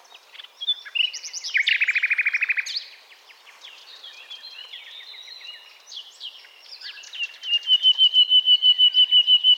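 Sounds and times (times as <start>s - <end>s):
common nightingale Luscinia megarhynchos singing: 0.0s - 9.5s.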